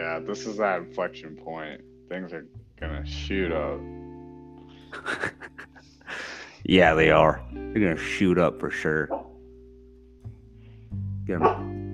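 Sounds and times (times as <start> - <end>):
speech: 0.2 - 4.0, 4.9 - 5.5, 6.6 - 9.2, 11.3 - 11.7
laughter: 4.8 - 6.5
female dog barking in its sleep during a nightmare: 11.4 - 11.6.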